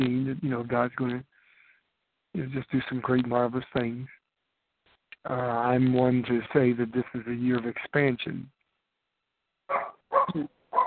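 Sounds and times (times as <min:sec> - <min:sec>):
speech: 0:00.0 - 0:01.3, 0:02.3 - 0:04.2, 0:05.2 - 0:08.6, 0:09.7 - 0:10.6
dog barking: 0:09.7 - 0:10.8.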